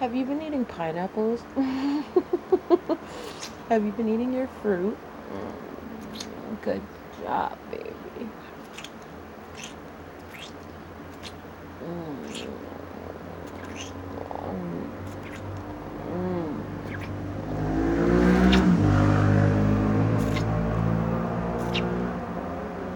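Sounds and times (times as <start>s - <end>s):
speech: 0.0s - 8.4s, 11.8s - 12.8s
motorcycle engines revving: 11.8s - 22.9s.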